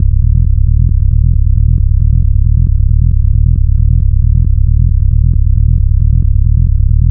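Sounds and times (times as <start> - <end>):
techno bass loop in C at 135: 0.0 - 7.0.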